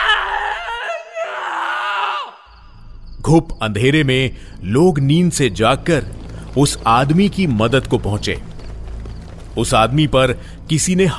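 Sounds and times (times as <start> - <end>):
man screaming loudly and hoarsely in distress: 0.0 - 2.5
speech: 3.2 - 8.5, 9.6 - 11.1.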